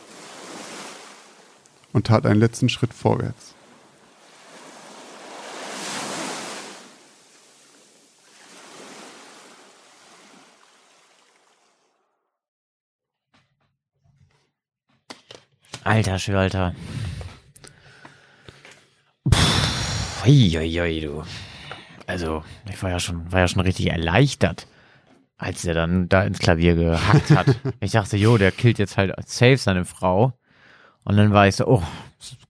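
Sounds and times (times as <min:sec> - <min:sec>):
ocean waves crashing: 0:00.0 - 0:12.0
speech: 0:02.0 - 0:03.6, 0:16.0 - 0:17.2, 0:20.2 - 0:21.5, 0:22.1 - 0:24.7, 0:25.4 - 0:30.4, 0:31.0 - 0:32.4
laughter: 0:26.9 - 0:28.7.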